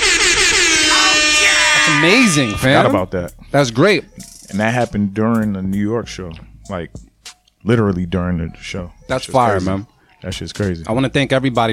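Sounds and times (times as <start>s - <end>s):
air horn sound effect blaring: 0.0s - 3.0s
speech: 2.0s - 11.7s.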